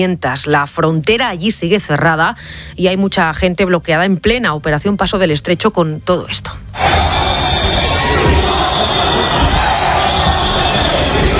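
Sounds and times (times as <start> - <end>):
speech: 0.0 - 7.9
large crowd booing: 6.8 - 11.3.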